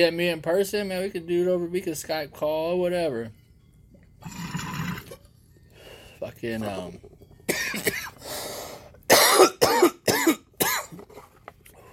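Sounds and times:
speech: 0.0 - 3.4, 6.2 - 7.1
raspy breath: 5.6 - 6.2, 8.2 - 9.0
harsh chesty coughing by one person: 7.5 - 8.2, 9.1 - 11.1.

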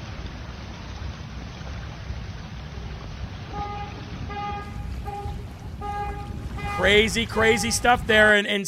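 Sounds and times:
low car engine rumble: 0.0 - 8.3
cars plowing through a flooded street on the Las Vegas Strip: 0.0 - 8.6
rush of floodwater on the Las Vegas Strip: 0.0 - 8.6
car horn honks: 3.5 - 8.1
speech: 6.8 - 8.6.

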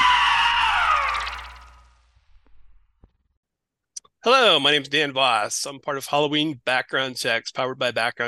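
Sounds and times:
shrill scream from a horror movie trailer: 0.0 - 1.9
speech: 4.2 - 8.2.

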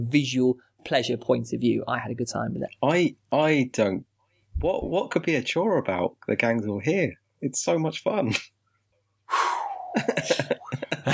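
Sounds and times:
speech: 0.0 - 8.6, 9.3 - 11.1
sharp intake of breath gasp: 9.3 - 10.0
short choppy breathy bursts: 9.3 - 10.5
laughter: 9.9 - 11.1.

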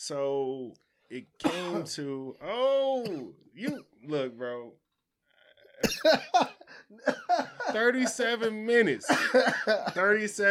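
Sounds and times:
speech: 0.0 - 4.8, 5.8 - 10.4
sharp coughs: 1.4 - 2.0, 3.0 - 4.0, 5.8 - 7.4, 9.0 - 10.0.

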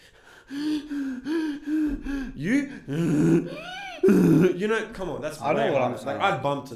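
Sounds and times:
heavy voiced gasping breathing into the microphone: 0.0 - 4.6
speech: 2.4 - 6.7.

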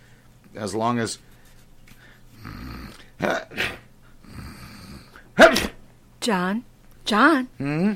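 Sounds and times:
speech: 0.6 - 1.3, 3.2 - 3.8, 6.2 - 7.9
wheezy sniffling breaths: 1.3 - 5.3
low snoring-like rumbles: 2.3 - 3.1, 4.2 - 5.2
person sneezing: 3.2 - 3.9, 5.2 - 5.8.

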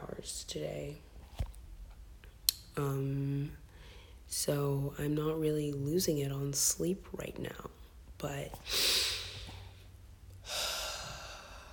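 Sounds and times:
speech: 0.2 - 1.1, 2.8 - 3.6, 4.3 - 9.0
deep breath: 3.7 - 4.2, 8.6 - 11.7.

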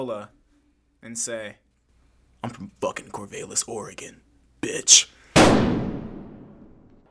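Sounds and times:
speech: 0.0 - 0.4, 1.0 - 1.6, 2.4 - 5.8
gunshot with echo: 5.4 - 7.1.

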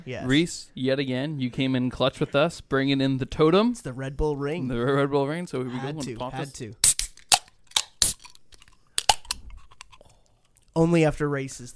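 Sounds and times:
speech: 0.0 - 6.9, 10.8 - 11.7
slurping sips of a drink: 6.8 - 10.7.

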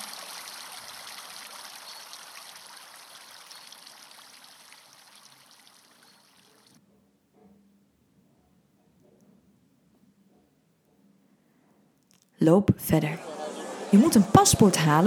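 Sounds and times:
water trickling and splashing from a fountain: 0.0 - 6.8
speech: 12.4 - 13.3, 13.9 - 15.0
laughter: 13.1 - 15.0.

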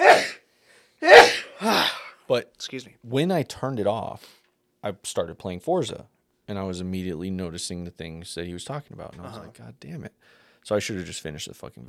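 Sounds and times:
sneeze: 0.0 - 0.4, 1.0 - 2.1
faint trailing breath: 0.5 - 1.0, 10.2 - 10.7
speech: 2.3 - 11.8.

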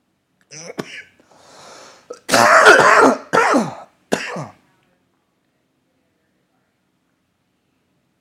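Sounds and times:
person coughing in another room: 0.5 - 1.2, 2.1 - 4.6
breathy sounds: 1.2 - 2.3.

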